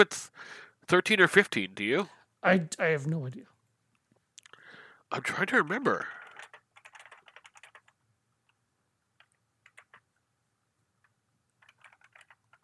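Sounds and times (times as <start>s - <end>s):
speech: 0.0s - 3.5s, 5.1s - 6.2s
rapid typing on a computer keyboard: 6.0s - 8.6s, 9.2s - 10.1s, 11.6s - 12.6s.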